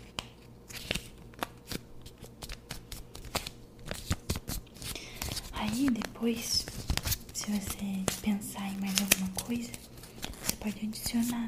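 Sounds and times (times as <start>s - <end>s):
crisp sheet of paper being folded: 0.0s - 11.4s
speech: 5.8s - 6.9s.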